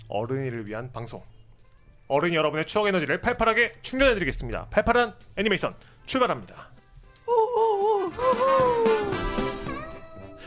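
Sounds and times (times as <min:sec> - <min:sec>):
speech: 0:00.1 - 0:01.4, 0:02.1 - 0:06.8
loud high-pitched scream: 0:07.3 - 0:09.9.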